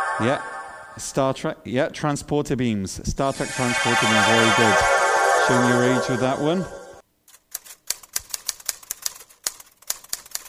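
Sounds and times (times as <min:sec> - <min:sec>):
speech: 0:00.2 - 0:04.9, 0:05.5 - 0:06.8
manual typewriter clacking: 0:07.5 - 0:10.4.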